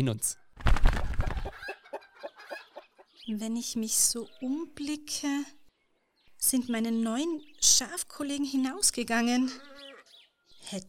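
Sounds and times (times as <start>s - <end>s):
speech: 0.0s - 1.0s, 3.3s - 5.6s, 6.4s - 9.9s, 10.6s - 10.8s
rooster clucking: 1.2s - 3.1s.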